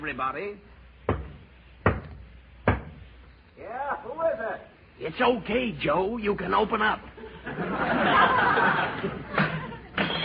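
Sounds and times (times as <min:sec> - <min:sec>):
speech: 0:00.0 - 0:00.7, 0:03.6 - 0:09.2
faint hiss: 0:00.0 - 0:10.0
firm knocks on a refrigerator door: 0:01.1 - 0:03.0
laughter: 0:07.1 - 0:10.1.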